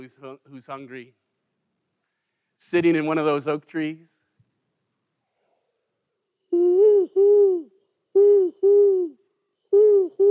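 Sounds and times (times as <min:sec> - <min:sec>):
speech: 0:00.0 - 0:01.2, 0:02.6 - 0:04.2, 0:06.5 - 0:10.2
human voice imitating owl hoots: 0:06.5 - 0:10.2.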